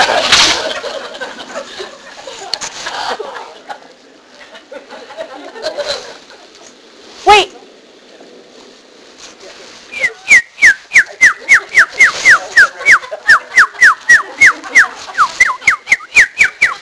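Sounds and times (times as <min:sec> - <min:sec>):
laughter: 0:00.0 - 0:06.8, 0:10.8 - 0:16.7
faint hiss: 0:00.0 - 0:16.7
bird call: 0:09.9 - 0:16.7.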